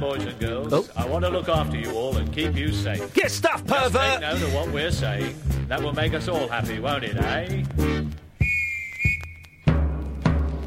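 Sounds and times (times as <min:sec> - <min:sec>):
speech: 0:00.0 - 0:08.1
police whistle shrill blast: 0:08.4 - 0:09.8.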